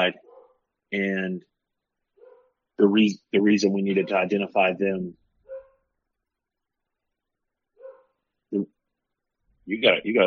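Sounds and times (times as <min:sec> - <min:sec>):
speech: 0:00.0 - 0:00.2, 0:00.9 - 0:01.5, 0:02.8 - 0:05.2, 0:08.5 - 0:08.7, 0:09.7 - 0:10.2
dog barking: 0:00.2 - 0:00.6, 0:02.2 - 0:02.6, 0:03.9 - 0:04.5, 0:05.4 - 0:05.8, 0:07.8 - 0:08.2.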